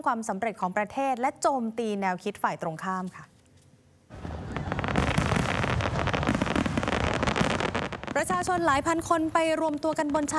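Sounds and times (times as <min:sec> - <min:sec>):
speech: 0:00.0 - 0:03.3, 0:08.2 - 0:10.3
fireworks from a large display along the coast: 0:04.1 - 0:10.3.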